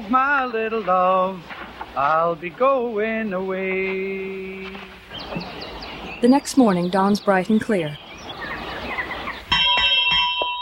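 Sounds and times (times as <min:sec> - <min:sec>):
speech: 0:00.1 - 0:05.5, 0:06.2 - 0:08.0
hand bell ringing in a dormitory to wake boys: 0:09.5 - 0:10.6.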